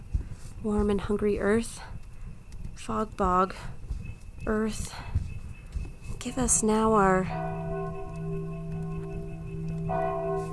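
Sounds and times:
speech: 0.6s - 2.0s, 2.8s - 3.8s, 4.4s - 5.2s, 6.2s - 7.7s
large bell chiming the hour: 6.2s - 10.5s.

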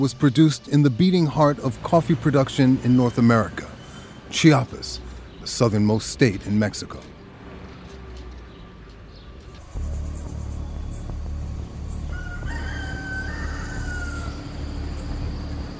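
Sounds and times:
speech: 0.0s - 3.7s, 4.3s - 7.1s
steady low rumble of outdoor noise: 1.1s - 15.7s
roosters crowing at dawn outside a coffee farm in Chiapas Mexico: 11.6s - 15.7s.

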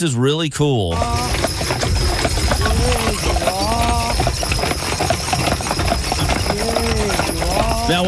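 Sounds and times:
speech: 0.0s - 1.8s, 7.9s - 8.0s
carriage driver calling sing-song commands to horses: 0.8s - 1.4s, 2.6s - 4.4s, 6.4s - 8.0s
carriage horses' hooves clip-clopping: 0.8s - 8.0s
constant hum: 0.8s - 8.0s.

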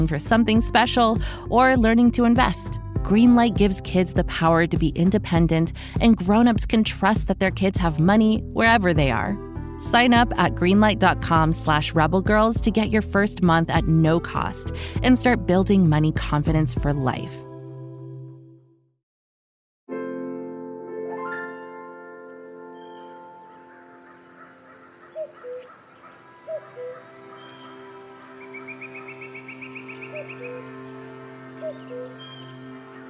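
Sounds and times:
speech: 0.0s - 17.5s
rising bird trill: 22.2s - 33.0s
cuckoo chattering in the woods: 22.8s - 33.0s
steady droning background: 23.7s - 33.0s.

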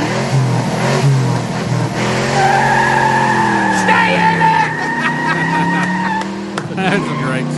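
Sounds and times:
car engine roaring during a burnout: 0.0s - 7.5s
car tires screeching during a burnout: 0.0s - 7.5s
laughter: 3.8s - 7.5s.

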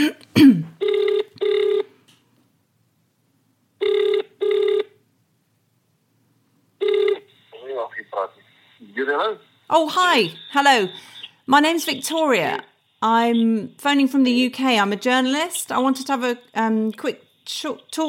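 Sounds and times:
person answering the phone: 0.8s - 1.9s, 6.8s - 12.6s
ringing tone of an outgoing phone call placed from the UK: 0.8s - 1.9s, 3.8s - 5.0s, 6.8s - 7.7s, 9.1s - 11.1s
speech: 9.1s - 18.0s.

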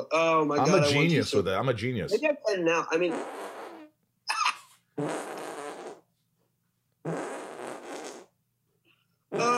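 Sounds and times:
speech: 0.1s - 3.6s, 5.0s - 5.3s
sputtering armpit farts: 3.0s - 3.9s, 5.0s - 6.0s, 7.0s - 8.4s, 9.3s - 9.5s.

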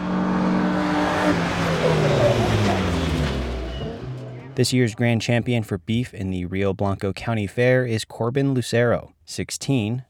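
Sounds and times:
rally car engine revving: 0.0s - 5.0s
speech: 4.6s - 10.0s.

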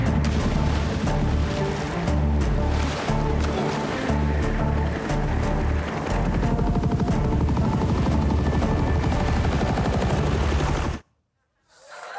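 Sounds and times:
helicopter hovering over the ocean near a U.S. Navy warship: 0.0s - 11.0s
rising whine: 2.2s - 11.0s.

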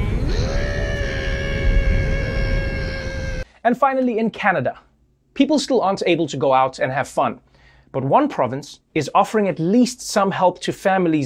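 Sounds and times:
stifled scream with mouth closed: 0.0s - 3.5s
speech: 3.6s - 11.2s.

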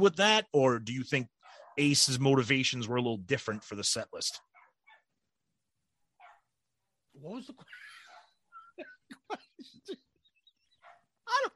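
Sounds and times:
speech: 0.0s - 4.5s, 7.2s - 7.9s
dog barking outside: 1.4s - 2.0s, 4.4s - 5.1s, 6.2s - 6.5s, 8.0s - 8.4s, 10.8s - 11.1s.

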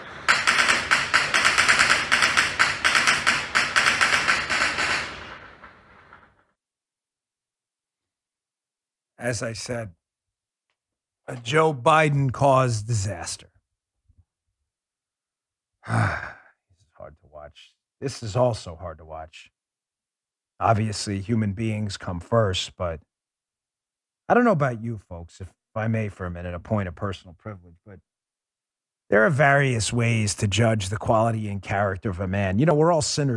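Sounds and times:
gunfire bursts recorded on a phone: 0.3s - 5.3s
speech: 9.3s - 10.0s, 11.3s - 13.5s, 18.1s - 19.6s, 20.6s - 23.1s, 24.3s - 28.1s, 29.1s - 33.3s.

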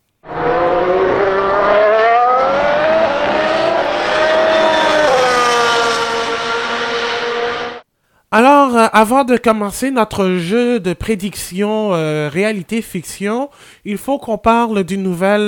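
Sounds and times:
race car engines revving at race start: 0.2s - 7.8s
speech: 8.4s - 15.4s.

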